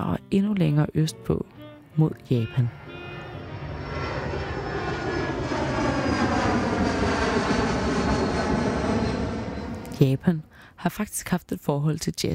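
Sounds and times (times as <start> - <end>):
speech: 0.0 - 2.8, 10.0 - 12.3
airplane engine drone in flight: 0.0 - 10.8.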